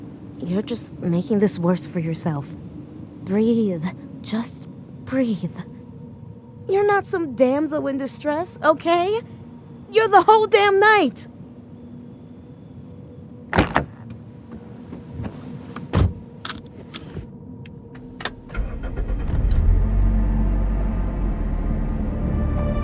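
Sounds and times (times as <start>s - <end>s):
speech: 0.4s - 2.7s, 3.3s - 5.7s, 6.7s - 11.4s
car door and cabin clicks and thumps: 14.9s - 17.3s
car engine starting and running with a low hum: 18.3s - 22.7s.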